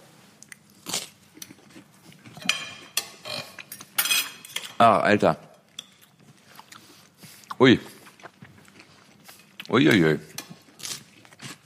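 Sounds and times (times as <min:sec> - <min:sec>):
person biting and chewing crunchy bread while tasting it: 0:00.3 - 0:02.9, 0:05.6 - 0:11.6
speech: 0:04.8 - 0:05.4, 0:07.6 - 0:07.9, 0:09.7 - 0:10.3.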